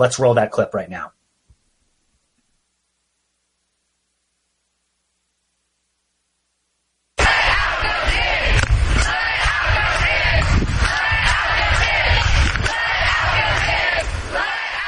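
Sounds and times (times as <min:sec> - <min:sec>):
speech: 0:00.0 - 0:01.2
crowd of protesters shouting at a New York rally: 0:07.2 - 0:14.8.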